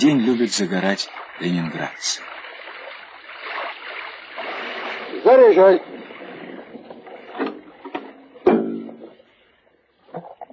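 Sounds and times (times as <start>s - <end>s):
speech: 0.0s - 2.3s, 5.3s - 6.0s
river water washing and splashing against stone parapet: 0.0s - 9.3s.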